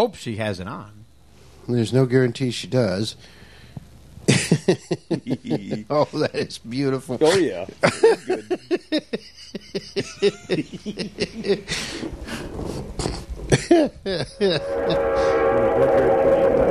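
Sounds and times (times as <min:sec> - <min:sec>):
speech: 0:00.0 - 0:01.0, 0:01.6 - 0:03.4, 0:04.3 - 0:16.6
laughter: 0:04.3 - 0:12.1, 0:13.0 - 0:15.0
train passing: 0:14.4 - 0:16.6.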